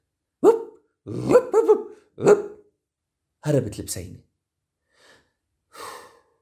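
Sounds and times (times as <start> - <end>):
large dog barking with a growling edge: 0.4 - 2.6
speech: 1.0 - 2.5, 3.4 - 4.3.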